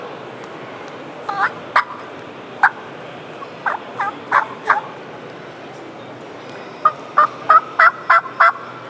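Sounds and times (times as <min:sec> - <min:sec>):
soft turkey yelps on a turkey call to locate a gobbler: 0:01.3 - 0:02.0, 0:03.6 - 0:04.9, 0:07.2 - 0:08.6.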